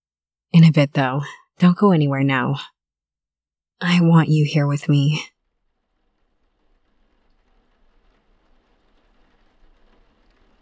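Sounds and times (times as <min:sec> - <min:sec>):
speech: 0:00.6 - 0:02.8, 0:03.8 - 0:05.3
heavy rain pouring down outdoors: 0:05.3 - 0:10.6.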